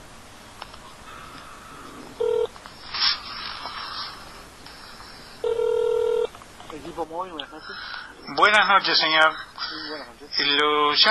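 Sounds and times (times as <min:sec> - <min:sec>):
steady phone line hiss: 0:00.8 - 0:04.1, 0:04.8 - 0:06.3
telephone keypad tones dialing an extension on an automated phone line: 0:02.2 - 0:02.5, 0:05.4 - 0:06.3
speech: 0:07.2 - 0:11.0.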